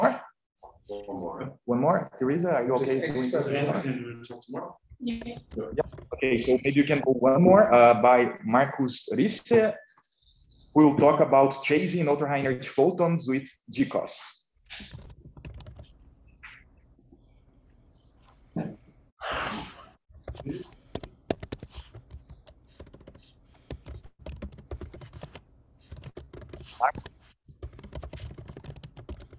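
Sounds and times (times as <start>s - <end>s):
speech: 1.0s - 9.8s, 10.8s - 15.0s, 20.4s - 20.7s
computer keyboard typing: 5.0s - 6.8s, 14.8s - 16.0s, 20.2s - 29.3s.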